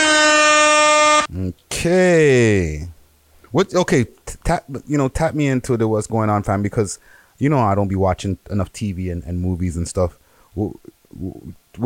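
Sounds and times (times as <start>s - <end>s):
air horn blast: 0.0s - 1.3s
lower wavering honk: 0.0s - 1.3s
speech: 1.8s - 2.9s, 3.5s - 11.8s.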